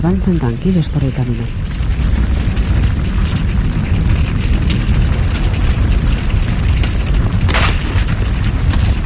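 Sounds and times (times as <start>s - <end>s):
speech: 0.0s - 1.7s
brief bright crackling burst of a truck fire: 0.0s - 9.0s
truck exploding in flames with roaring rumble: 0.4s - 9.0s.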